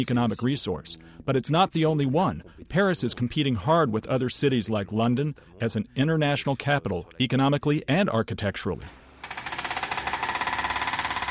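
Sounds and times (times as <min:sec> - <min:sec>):
speech: 0:00.0 - 0:09.0
hydraulic drill rattling on a construction site: 0:08.9 - 0:11.3.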